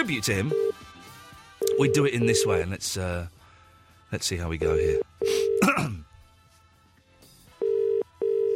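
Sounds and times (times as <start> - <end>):
speech: 0.0 - 0.8, 1.8 - 3.4, 4.1 - 6.1
outgoing telephone call ringing tone on a radio broadcast: 0.5 - 0.8, 1.6 - 2.6, 4.6 - 5.6, 7.6 - 8.5
throat clearing: 5.6 - 6.0.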